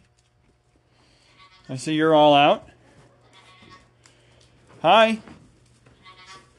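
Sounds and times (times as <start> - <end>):
steady low hum: 0.0 - 6.5
goat bleating: 1.3 - 1.8, 3.2 - 4.0, 6.0 - 6.5
speech: 1.7 - 2.7, 4.8 - 5.4.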